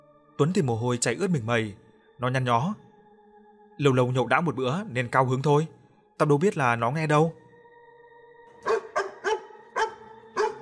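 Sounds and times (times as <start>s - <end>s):
speech: 0.4s - 2.8s, 3.8s - 7.4s
dog barking at night: 8.6s - 10.6s.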